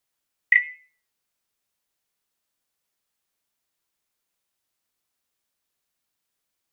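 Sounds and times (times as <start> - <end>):
flash beep: 0.5 - 0.9.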